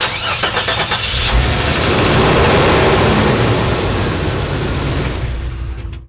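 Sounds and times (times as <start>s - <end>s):
jeep engine starting: 0.0s - 6.0s.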